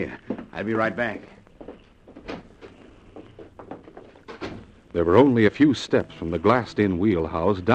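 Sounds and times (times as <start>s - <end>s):
speech: 0.0s - 1.4s, 5.0s - 7.7s
cabin door opening: 1.7s - 6.8s.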